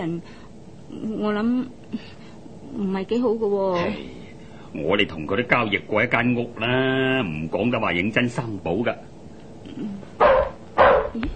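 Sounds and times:
speech: 0.0s - 9.1s
dog barking at a door: 10.2s - 11.2s.

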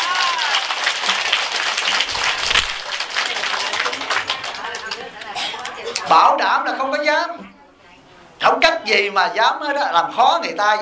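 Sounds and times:
audience applause at a Buddhist sermon: 0.0s - 5.8s
speech: 6.1s - 7.5s, 8.5s - 10.8s.

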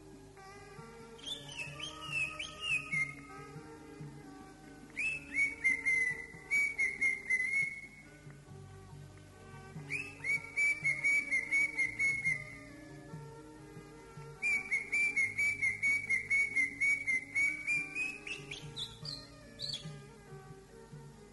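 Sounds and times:
greater green leafbird singing rapid even whistled notes: 1.2s - 3.3s, 5.0s - 8.0s, 9.9s - 12.6s, 14.4s - 19.9s.

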